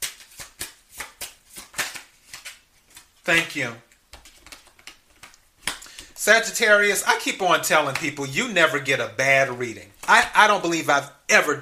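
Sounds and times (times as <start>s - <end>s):
cards being shuffled for a card reading: 0.0s - 6.2s
speech: 3.3s - 3.9s, 6.3s - 11.6s.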